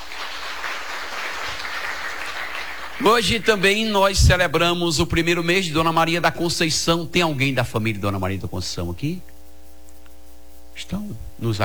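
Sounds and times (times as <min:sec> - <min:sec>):
crowd applauding to welcome a visitor: 0:00.0 - 0:03.6
speech: 0:03.0 - 0:09.3, 0:10.8 - 0:11.6.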